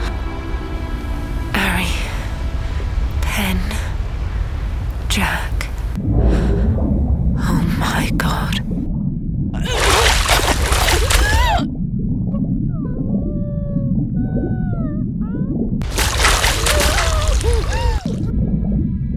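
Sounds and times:
water splashing as a boat capsizes in the ocean swell: 0:00.0 - 0:08.7, 0:09.6 - 0:11.6, 0:15.8 - 0:18.3
constant low rumble: 0:00.0 - 0:19.1.

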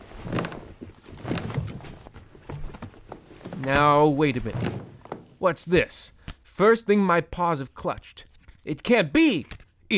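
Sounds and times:
person rummaging deep in couch cushions to dig out stashed items: 0:00.0 - 0:06.2
speech: 0:03.6 - 0:09.9.

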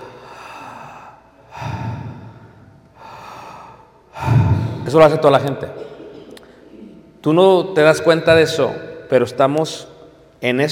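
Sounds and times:
deliberate breathing in and out, demonstrated: 0:00.0 - 0:04.9
speech: 0:04.9 - 0:05.9, 0:07.2 - 0:10.7.

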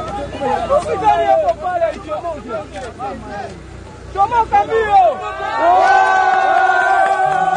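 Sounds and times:
crowd shouting and cheering during mine cave-in rescue: 0:00.0 - 0:02.5, 0:04.0 - 0:07.5
crowd chatter: 0:00.0 - 0:07.5.

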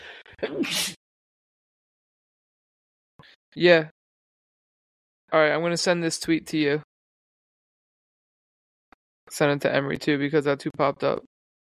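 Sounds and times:
person sneezing: 0:00.4 - 0:01.0
speech: 0:00.4 - 0:01.0, 0:03.6 - 0:04.0, 0:05.3 - 0:06.9, 0:09.3 - 0:11.3.

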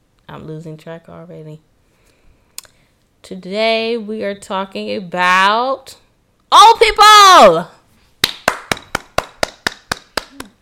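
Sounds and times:
speech: 0:00.3 - 0:01.7, 0:03.3 - 0:07.8
hands clapping: 0:08.2 - 0:10.6.

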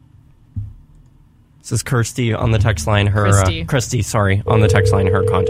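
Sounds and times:
speech: 0:01.7 - 0:05.4
steady phone dial tone: 0:04.6 - 0:05.4.

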